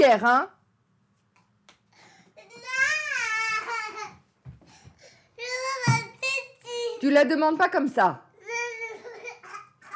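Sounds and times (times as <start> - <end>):
speech: 0.0 - 0.6, 7.0 - 8.3
young girl crying loudly: 2.4 - 4.2, 5.4 - 6.0, 8.4 - 9.9.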